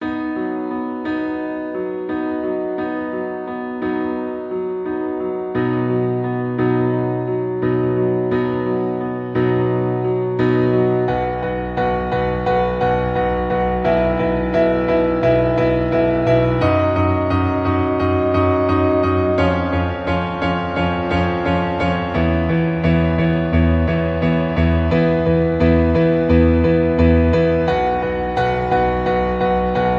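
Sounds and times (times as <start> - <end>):
piano cover: 0.0 - 29.9.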